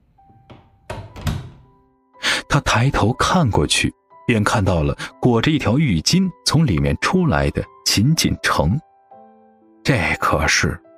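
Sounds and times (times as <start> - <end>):
bathroom door opening: 0.0 - 1.8
dull thumps of bathroom door: 0.5 - 1.7
speech: 2.6 - 8.9, 9.8 - 10.9.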